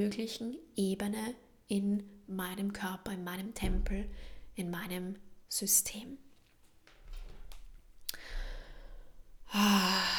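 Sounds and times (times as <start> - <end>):
speech: 0.0 - 6.2, 9.5 - 10.1
deep breath: 8.1 - 10.1.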